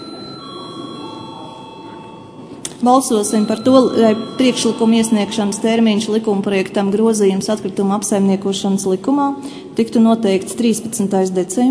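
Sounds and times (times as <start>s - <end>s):
electric bell ringing in a parliament session to call a vote: 0.0s - 6.8s
speech: 2.8s - 11.6s.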